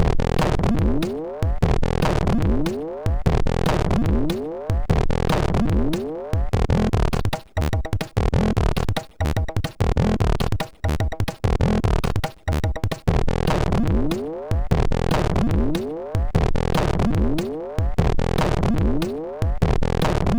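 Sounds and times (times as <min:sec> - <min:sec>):
bouncy funk chiptune on a MOS6581R3 SID chip: 0:00.0 - 0:20.3.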